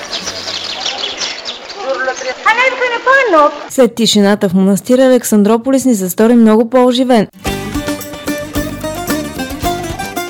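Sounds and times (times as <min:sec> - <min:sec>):
small birds chirping and twittering near a monastery: 0:00.0 - 0:03.0
speech: 0:02.2 - 0:07.5.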